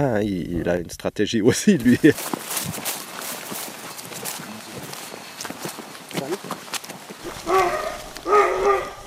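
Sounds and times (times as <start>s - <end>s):
speech: 0.0s - 2.9s
crunching footsteps outdoors: 1.8s - 9.0s
rustling outdoors: 2.0s - 9.0s
hunting dogs barking: 7.2s - 9.0s.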